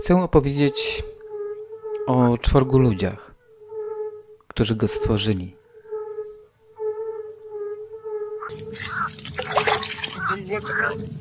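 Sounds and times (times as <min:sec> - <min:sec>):
speech: 0:00.0 - 0:01.2, 0:02.1 - 0:03.3, 0:04.6 - 0:05.6, 0:10.5 - 0:11.1
steady humming tone: 0:00.0 - 0:11.1
water pouring with loud continuous splashing: 0:08.5 - 0:10.3.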